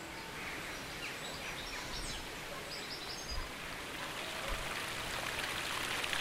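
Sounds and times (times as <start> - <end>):
running river water in the Peak District National Park: 0.0 - 6.1
rain in the Peak District National Park in central England: 3.4 - 6.1.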